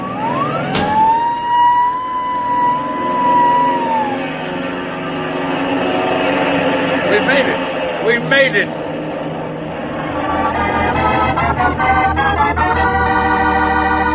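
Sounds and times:
warm airplane engine starting for takeoff: 0.0s - 14.1s
low rumble: 2.0s - 13.2s
speech: 8.1s - 8.8s.

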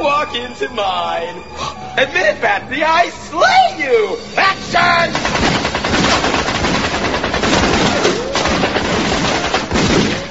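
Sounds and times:
speech: 0.2s - 5.6s
guns firing blanks in automatic gunfire on a film set: 5.1s - 10.3s.

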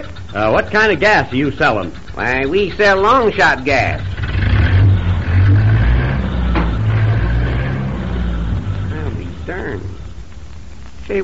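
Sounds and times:
speech: 0.0s - 4.1s
car engine roaring, tearing away from a gas station: 0.0s - 11.0s.

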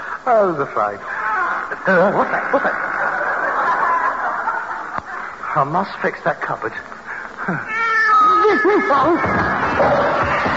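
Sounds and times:
speech: 0.2s - 1.1s, 1.7s - 3.0s, 5.6s - 6.9s, 7.5s - 7.8s, 8.5s - 10.5s
laughter: 1.0s - 5.5s
cat yowling and caterwauling: 7.7s - 10.5s.

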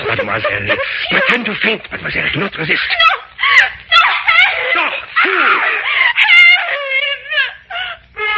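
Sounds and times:
laughter: 0.0s - 8.3s
speech: 0.2s - 3.1s
woman screaming in panic: 3.0s - 8.3s.

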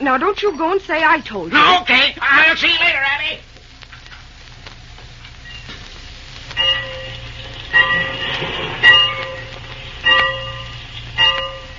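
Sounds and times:
speech: 0.0s - 3.4s
low idling rumble of a train standing still at a station: 5.9s - 11.7s
locomotive bell clanging at a station: 6.6s - 11.7s.

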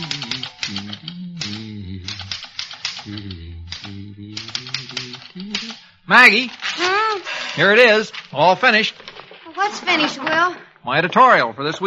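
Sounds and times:
typewriter typing in a small-town newspaper office: 0.0s - 5.8s
speech: 6.1s - 7.0s, 7.6s - 9.0s, 9.7s - 11.8s.

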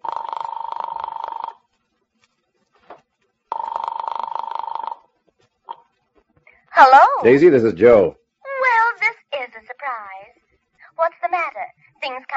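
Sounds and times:
electronic telephone ringing after being dialed: 0.0s - 1.7s, 3.5s - 5.2s
speech: 6.8s - 8.2s.

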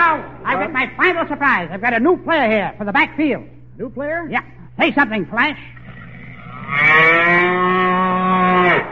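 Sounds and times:
speech: 0.1s - 5.8s, 6.7s - 7.8s
cow mooing: 5.8s - 8.9s.

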